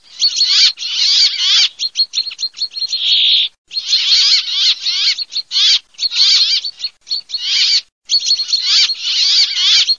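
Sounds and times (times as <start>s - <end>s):
chaffinch and brambling calling: 0.0s - 9.9s.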